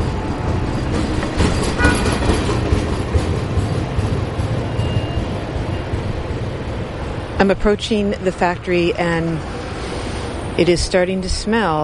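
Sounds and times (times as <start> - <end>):
train wheels clattering: 0.0 - 7.2
train rumbling along the rails: 0.0 - 11.8
speech: 7.4 - 9.6, 10.6 - 11.8.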